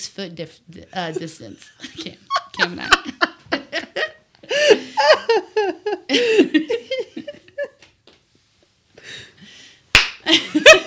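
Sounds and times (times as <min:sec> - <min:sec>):
speech: 0:00.0 - 0:03.3, 0:04.7 - 0:07.1
people laughing and giggling: 0:01.8 - 0:07.8, 0:10.3 - 0:10.8
hand slap of a self high-five: 0:09.9 - 0:10.2.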